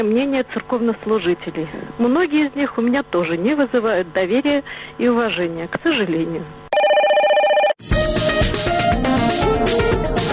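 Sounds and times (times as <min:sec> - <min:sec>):
speech: 0:00.0 - 0:06.6
loud electronic telephone ring: 0:06.7 - 0:07.8
dense busy music: 0:07.8 - 0:10.3.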